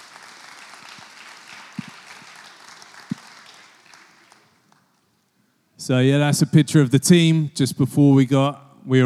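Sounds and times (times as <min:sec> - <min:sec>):
crowd clapping: 0:00.0 - 0:05.1
speech: 0:05.8 - 0:09.0.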